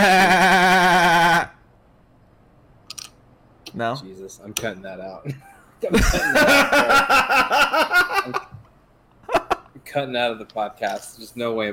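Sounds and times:
person imitating a sheep bleating: 0.0 - 1.6
speech: 3.8 - 8.5, 9.9 - 11.7
laughter: 5.3 - 8.6.

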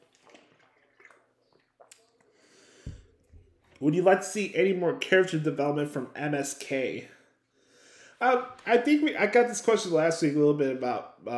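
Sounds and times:
person slurping and gulping water: 0.0 - 3.8
speech: 3.8 - 7.2, 8.2 - 11.3.

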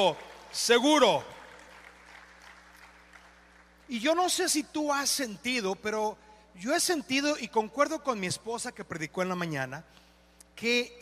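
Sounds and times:
speech: 0.0 - 1.3, 3.9 - 10.0, 10.6 - 10.9
audience applauding: 0.0 - 3.8
low steady hum: 0.0 - 10.9.

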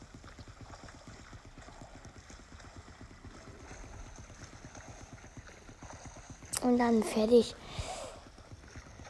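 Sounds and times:
video game character swimming with sloshing churning water: 0.0 - 9.0
speech: 6.6 - 7.9.

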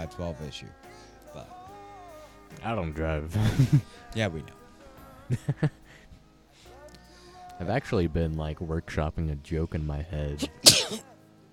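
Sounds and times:
speech: 0.0 - 1.6, 2.5 - 4.6, 5.3 - 5.8, 7.6 - 11.1
laughter: 3.3 - 4.0, 5.3 - 5.8
single sharp sneeze: 10.4 - 11.1.

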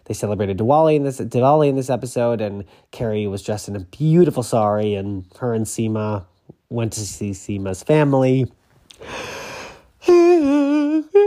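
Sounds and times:
speech: 0.1 - 9.4
person yawning: 9.0 - 11.2.

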